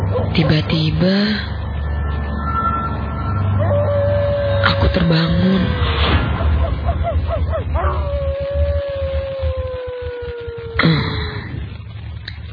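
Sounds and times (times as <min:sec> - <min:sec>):
distant dog yelping and howling: 0:00.0 - 0:00.8, 0:03.5 - 0:10.8
low rumble of noise: 0:00.0 - 0:12.5
speech: 0:00.3 - 0:01.6, 0:04.8 - 0:06.2.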